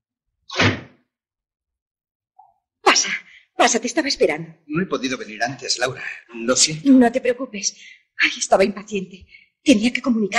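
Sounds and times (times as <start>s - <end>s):
door shutting with a thud: 0.5s - 1.0s
speech: 3.0s - 10.3s.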